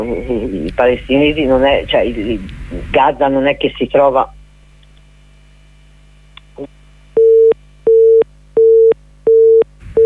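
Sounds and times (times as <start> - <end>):
speech: 0.0 - 4.4
telephone busy tone after a dropped call: 7.2 - 10.0.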